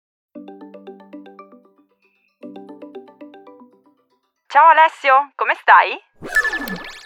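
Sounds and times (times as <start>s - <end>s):
outgoing call ringing tone from a Google Home Mini smart speaker placing a Duo call: 0.4s - 4.2s
speech: 4.5s - 7.0s.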